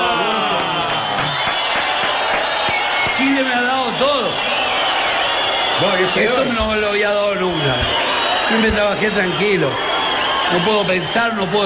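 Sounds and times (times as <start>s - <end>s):
large audience whistling at a performer: 0.0s - 11.6s
rhythmic clapping or stamping: 0.3s - 3.2s
speech: 5.8s - 9.8s, 10.5s - 11.6s.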